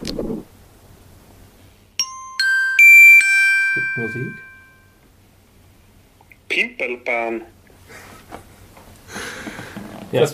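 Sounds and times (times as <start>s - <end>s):
train station announcement chime: 2.0s - 5.0s
speech: 4.0s - 4.5s, 6.6s - 7.6s, 10.1s - 10.3s.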